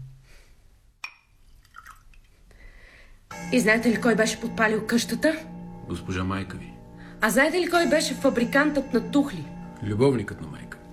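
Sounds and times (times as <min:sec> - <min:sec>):
wine pouring into a glass: 0:01.5 - 0:02.3
speech: 0:03.5 - 0:10.8.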